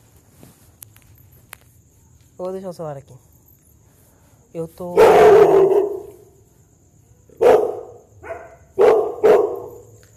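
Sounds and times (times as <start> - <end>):
speech: 2.4 - 3.3, 4.5 - 6.0
dog barking loudly a few metres from a house: 5.0 - 6.2, 7.4 - 9.8.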